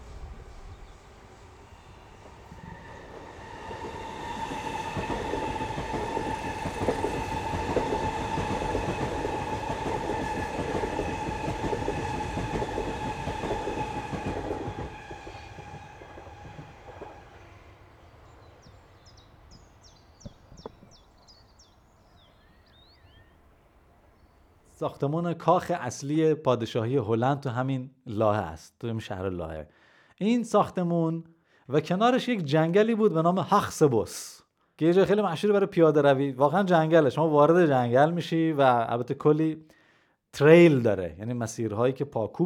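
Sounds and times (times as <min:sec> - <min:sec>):
train rumbling past: 0:00.0 - 0:20.6
speech: 0:24.8 - 0:42.4.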